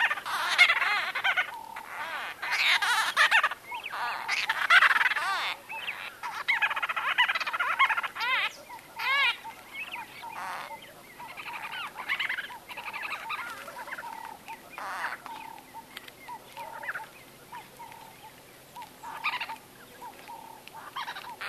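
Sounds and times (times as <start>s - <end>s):
White-fronted bee-eater calling with soft nasal bursts and squeaks: 0.0s - 21.4s
background noise: 0.0s - 21.4s.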